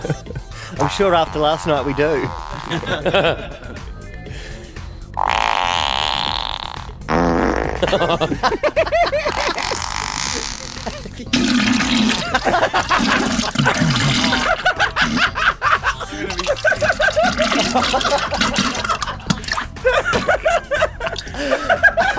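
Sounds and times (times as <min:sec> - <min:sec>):
people laughing: 0:00.0 - 0:00.9, 0:02.1 - 0:03.9, 0:07.8 - 0:22.1
fart sound effects played from a phone: 0:00.8 - 0:03.0, 0:05.2 - 0:08.1, 0:09.3 - 0:12.3, 0:12.9 - 0:14.5, 0:17.2 - 0:19.4
speech: 0:00.8 - 0:03.6, 0:07.8 - 0:09.1, 0:17.8 - 0:18.6.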